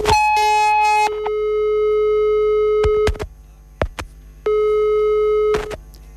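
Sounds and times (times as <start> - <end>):
telephone busy tone: 0.0 - 3.2, 4.5 - 5.8.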